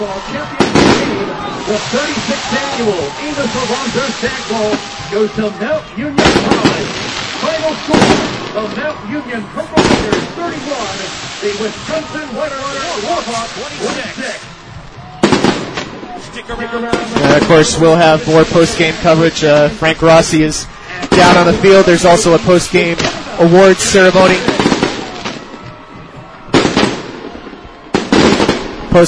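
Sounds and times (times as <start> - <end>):
speech: 0.0 - 7.0, 7.6 - 14.5, 16.2 - 24.7
fireworks exploding at a stadium celebration: 0.0 - 29.0
stadium crowd roaring and cheering: 0.0 - 29.0.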